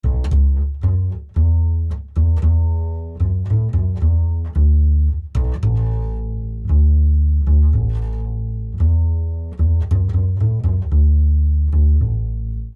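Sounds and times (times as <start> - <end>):
resonant acoustic bass: 0.0 - 12.7.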